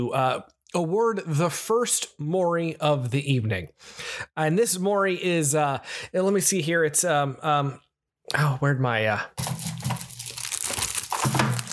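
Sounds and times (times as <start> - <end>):
speech: 0.0 - 9.7
paper envelope crinkling and tearing as it is ripped open: 9.4 - 11.7.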